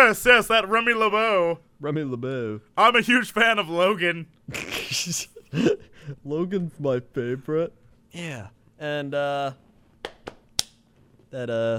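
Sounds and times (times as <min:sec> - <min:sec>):
speech: 0:00.0 - 0:09.6, 0:11.3 - 0:11.7
hands slapping: 0:10.0 - 0:10.8.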